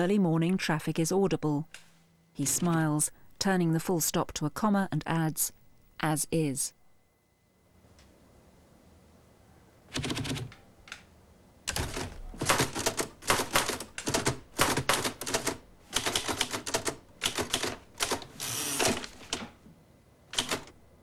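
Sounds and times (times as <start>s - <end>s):
speech: 0.0s - 6.8s, 9.9s - 10.4s
keys clattering on a manual typewriter at a desk: 10.0s - 10.6s, 11.7s - 19.6s, 20.3s - 20.8s.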